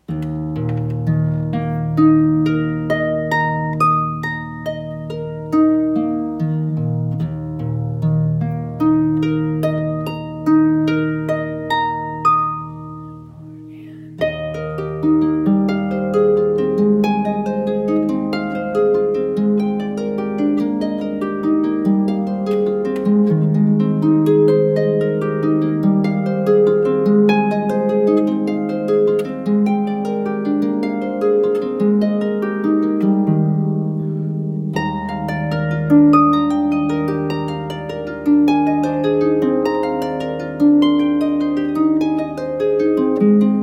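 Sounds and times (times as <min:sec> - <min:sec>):
processional harp: 0:00.0 - 0:43.6.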